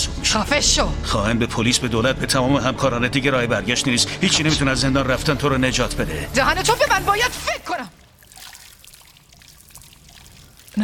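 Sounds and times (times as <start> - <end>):
speech: 0.4 - 8.0
liquid trickling and splashing down: 7.4 - 10.8.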